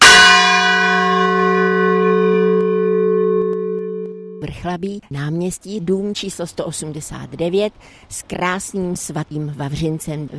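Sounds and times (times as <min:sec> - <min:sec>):
church's largest bell ringing: 0:00.0 - 0:04.4
speech: 0:04.6 - 0:10.3.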